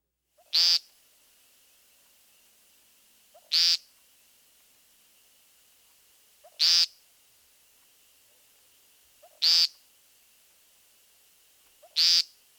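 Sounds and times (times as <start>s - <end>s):
American woodcock giving loud nasal buzzy peent calls: 3.3s - 3.8s, 6.4s - 6.9s, 8.2s - 9.8s, 11.7s - 12.4s.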